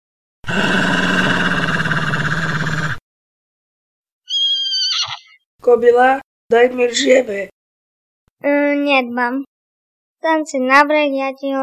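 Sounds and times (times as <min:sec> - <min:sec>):
wolf growling: 0:00.5 - 0:03.0
speech: 0:05.6 - 0:07.6, 0:08.4 - 0:09.5, 0:10.2 - 0:11.6.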